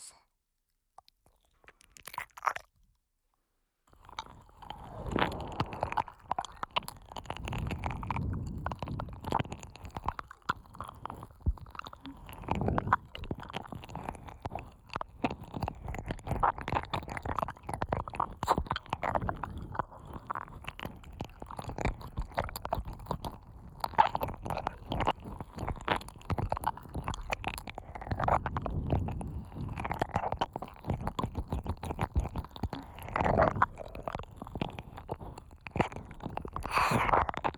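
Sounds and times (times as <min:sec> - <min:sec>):
wet mouth sounds of eating and licking: 0:01.0 - 0:02.8, 0:03.9 - 0:37.5
soft food crunches: 0:01.0 - 0:03.0, 0:03.9 - 0:37.5
slurping and squelching while eating: 0:03.9 - 0:37.5.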